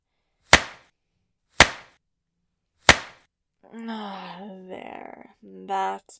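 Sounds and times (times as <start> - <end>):
whip lashes striking skin: 0.5 - 0.9, 1.6 - 2.0, 2.9 - 3.2
speech: 5.4 - 6.1.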